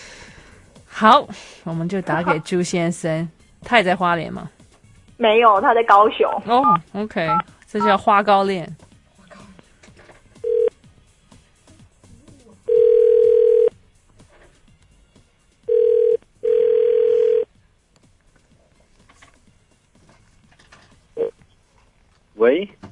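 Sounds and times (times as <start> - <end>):
speech: 1.0 - 4.6, 5.2 - 8.8
phone ringback tone through a hospital telephone earpiece: 10.4 - 10.7, 12.7 - 13.7, 15.7 - 17.5, 21.2 - 21.4.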